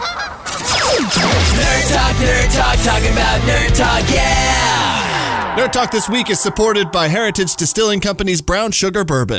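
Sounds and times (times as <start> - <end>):
Canada geese honking: 0.0 - 1.0
speech: 1.1 - 4.9, 5.6 - 9.3.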